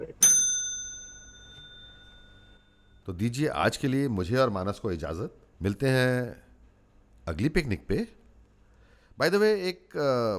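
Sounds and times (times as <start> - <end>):
single bright metallic bell ding ringing: 0.1 - 3.0
speech: 3.1 - 6.4, 7.2 - 8.2, 9.2 - 10.3.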